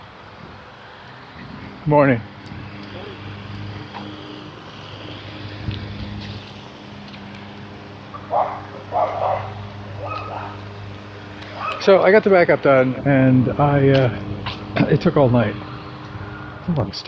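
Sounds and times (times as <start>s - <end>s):
engine noise: 0.0s - 17.0s
steady low rumble of wind: 0.0s - 17.0s
speech: 1.8s - 2.3s, 11.9s - 15.7s, 16.7s - 17.0s
big poodle barking: 8.2s - 10.6s, 11.6s - 11.8s.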